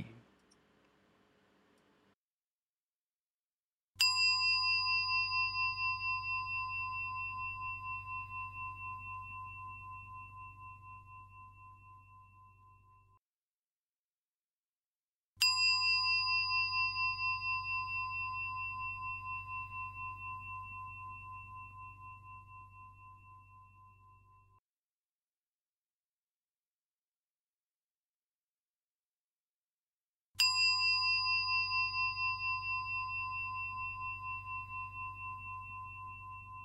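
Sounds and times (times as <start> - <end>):
meditation bell ringing: 4.0 - 13.2, 15.4 - 24.6, 30.4 - 36.6.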